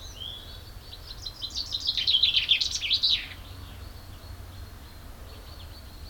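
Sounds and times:
Common chaffinch Fringilla coelebs singing: 0.0 - 4.3.

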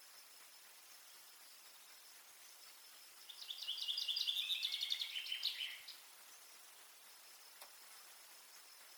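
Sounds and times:
common chaffinch song: 3.2 - 6.1.

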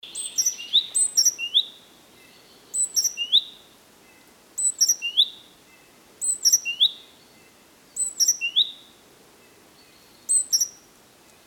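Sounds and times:
great tit Parus major calls: 0.1 - 7.0, 8.0 - 8.8, 9.8 - 10.8.

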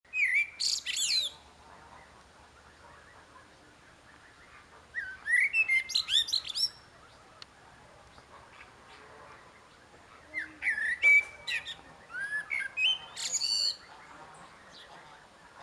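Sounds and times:
common blackbird Turdus merula singing: 0.1 - 1.4, 4.0 - 7.2, 9.7 - 14.0.

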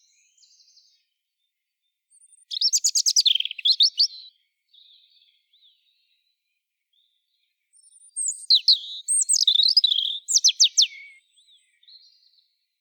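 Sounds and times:
European robin Erithacus rubecula singing: 0.0 - 12.6.

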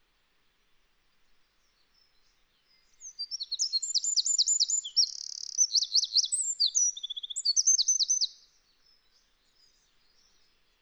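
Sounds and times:
Eurasian wren Troglodytes troglodytes singing: 3.0 - 8.4.

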